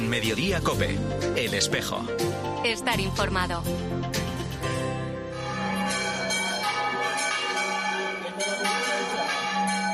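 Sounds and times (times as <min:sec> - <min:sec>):
speech: 0:00.1 - 0:04.1
restored church bells of the village bell tower swinging and pealing: 0:05.2 - 0:09.9.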